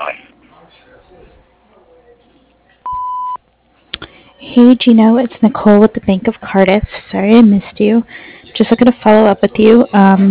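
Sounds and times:
quiet murmur: 0.0s - 10.2s
answering machine electronic beep before recording: 2.9s - 3.4s
speech: 4.6s - 10.2s.

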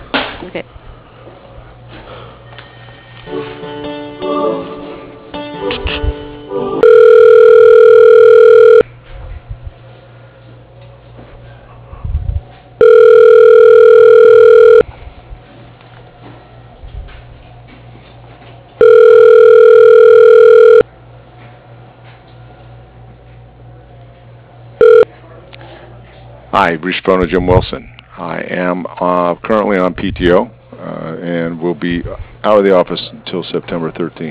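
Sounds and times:
speech: 0.5s - 1.5s, 26.6s - 27.9s, 28.5s - 30.6s, 31.3s - 34.3s
telephone ringback tone while an office call is transferred: 6.8s - 8.8s, 12.8s - 14.9s, 18.8s - 20.8s, 24.8s - 25.1s.

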